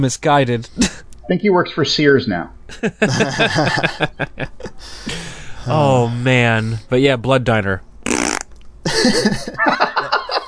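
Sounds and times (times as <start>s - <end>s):
speech: 0.0s - 7.9s, 8.8s - 9.9s
laughter: 2.7s - 5.7s, 8.9s - 10.4s
person blowing a raspberry imitating a fart: 8.0s - 8.5s.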